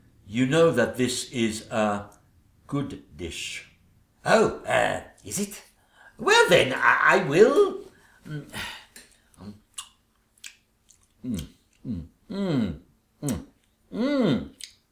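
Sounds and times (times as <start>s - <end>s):
speech: 0.3s - 8.8s, 9.4s - 9.6s, 11.2s - 14.6s
exaggerated chewing of a mouthful of a meat dish: 9.0s - 11.9s, 14.5s - 14.8s
voiced humming grunts: 11.2s - 14.5s.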